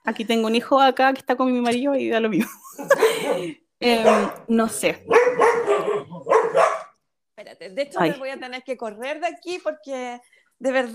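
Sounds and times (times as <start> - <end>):
speech: 0.1 - 6.7, 7.4 - 10.9
laughter: 2.4 - 3.6
dogs barking in the house: 3.2 - 7.0.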